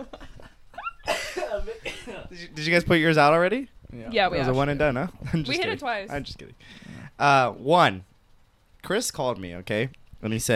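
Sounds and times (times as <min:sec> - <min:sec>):
person coughing: 0:01.0 - 0:02.3
speech: 0:01.6 - 0:08.1, 0:08.8 - 0:10.5.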